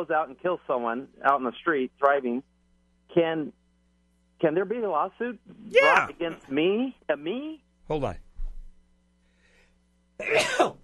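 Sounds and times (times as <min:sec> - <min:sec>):
speech: 0:00.0 - 0:02.5, 0:03.1 - 0:03.6, 0:04.4 - 0:08.2, 0:10.2 - 0:10.8
loud sneeze: 0:10.2 - 0:10.8.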